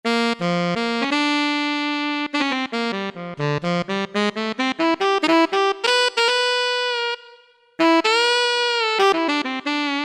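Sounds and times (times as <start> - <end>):
Alto Sax factory sound from Roland SC-50 Sound Canvas: 0.0 - 10.0.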